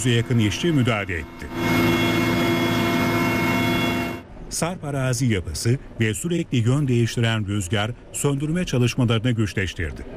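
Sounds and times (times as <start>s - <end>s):
speech: 0.0s - 2.1s, 4.5s - 10.1s
aircraft engine drone from a firefighting plane flying over a wildfire: 0.0s - 4.3s.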